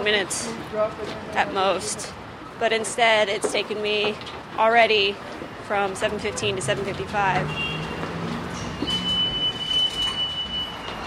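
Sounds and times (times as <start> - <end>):
speech: 0.0 - 7.8
subway train pulling into a station with a low rolling rumble: 5.7 - 11.0
thin sustained metallic squeal of subway wheels or brakes: 7.4 - 11.0.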